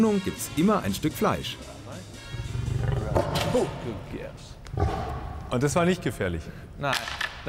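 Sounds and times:
speech: 0:00.0 - 0:02.1, 0:03.5 - 0:07.4
lion snarling on command for a show: 0:02.4 - 0:03.8.

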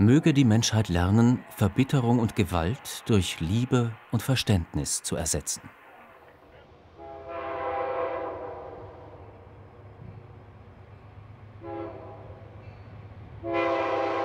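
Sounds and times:
speech: 0:00.0 - 0:05.8
passenger train rumbling with a low continuous drone: 0:00.0 - 0:14.2
passenger train horn blasts: 0:07.0 - 0:09.4, 0:11.6 - 0:12.4, 0:13.4 - 0:14.2.

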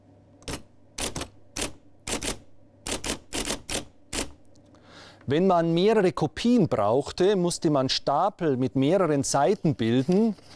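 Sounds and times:
typewriter typing: 0:00.4 - 0:04.4
speech: 0:05.3 - 0:10.5.

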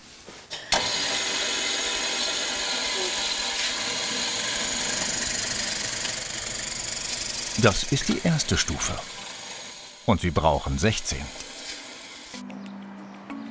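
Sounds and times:
drill drilling holes: 0:00.7 - 0:12.4
speech: 0:07.6 - 0:09.2, 0:10.1 - 0:11.4.

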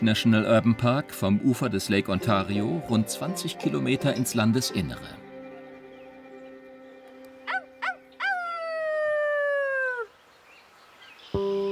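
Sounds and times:
speech: 0:00.0 - 0:05.2
coyote lure call yipping and howling: 0:07.4 - 0:10.1.

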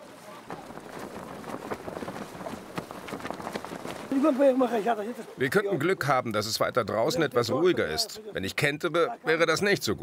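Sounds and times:
strong wind buffeting the microphone at a sailing regatta: 0:00.4 - 0:04.6
speech: 0:04.2 - 0:10.0.

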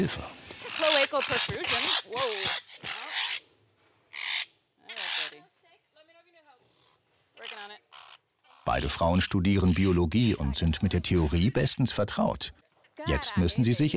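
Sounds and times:
speech: 0:00.0 - 0:02.9, 0:08.7 - 0:13.9
parrots squawking while chased between cages: 0:00.6 - 0:03.4, 0:04.1 - 0:05.4, 0:06.8 - 0:11.5.

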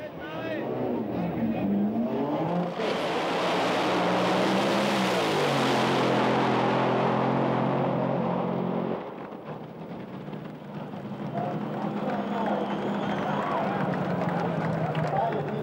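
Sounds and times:
crowd noise at a dragster race: 0:00.0 - 0:07.4, 0:09.2 - 0:15.6
dragster race car engines roaring while accelerating: 0:00.0 - 0:15.6.

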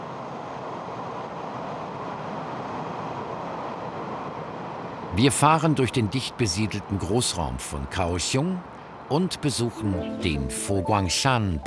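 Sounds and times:
train travelling on the railway heading north: 0:00.0 - 0:07.0
speech: 0:05.2 - 0:11.6.

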